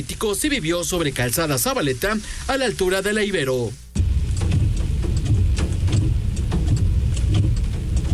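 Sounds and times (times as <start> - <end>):
speech: 0.0 - 3.8
car engines rumbling on a flooded street after intense rain: 4.0 - 8.1.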